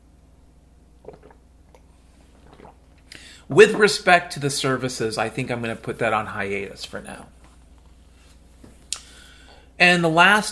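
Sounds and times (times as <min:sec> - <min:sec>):
low hum: 0:00.0 - 0:10.5
person with a dry mouth gulping water: 0:01.0 - 0:03.8
speech: 0:03.5 - 0:07.4, 0:09.8 - 0:10.5.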